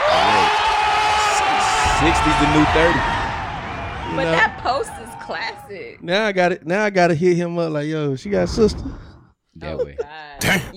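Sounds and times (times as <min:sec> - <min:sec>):
crowd applause: 0:00.0 - 0:05.6
speech: 0:02.0 - 0:03.2, 0:04.1 - 0:10.7
laughter: 0:09.6 - 0:10.7.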